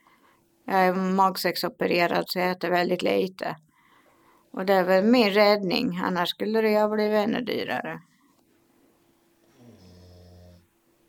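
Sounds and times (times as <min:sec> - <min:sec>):
quiet hum: 0:00.0 - 0:11.0
speech: 0:00.7 - 0:03.7, 0:04.5 - 0:08.1
dog snoring: 0:09.5 - 0:10.7.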